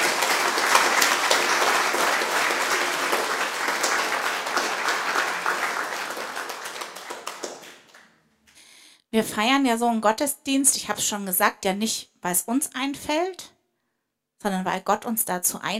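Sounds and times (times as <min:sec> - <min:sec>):
large crowd at a church service applauding a nativity play: 0:00.0 - 0:08.2
speech: 0:09.2 - 0:13.5, 0:14.4 - 0:15.7.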